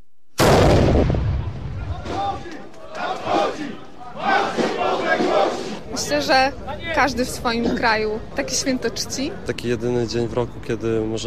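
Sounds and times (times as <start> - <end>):
cannon shot signalling the start of a march: 0.4 - 2.5
crowd shouting and cheering at a march: 1.4 - 6.2
speech: 6.0 - 11.2.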